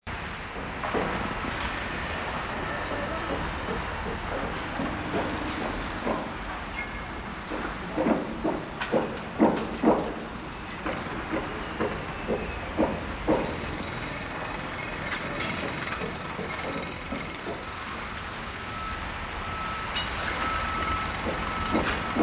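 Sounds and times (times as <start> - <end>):
ambient construction noise: 0.1 - 22.2.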